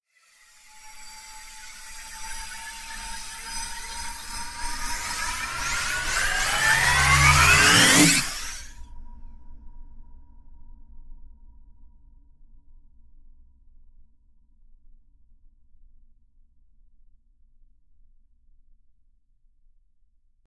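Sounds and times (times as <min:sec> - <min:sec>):
hyperbolic riser: 0:02.2 - 0:08.8.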